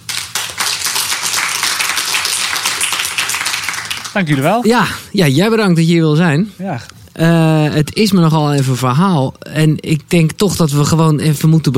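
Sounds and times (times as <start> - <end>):
audience applause: 0.0 - 4.6
speech: 4.2 - 11.7.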